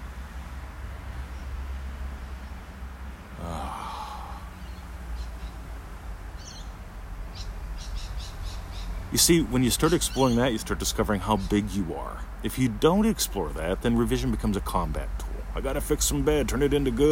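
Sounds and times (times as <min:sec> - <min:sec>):
steady low outdoor rumble: 0:00.0 - 0:17.1
breathy whoosh: 0:03.4 - 0:04.7
bird chirps outdoors: 0:06.4 - 0:10.6
speech: 0:09.1 - 0:17.1.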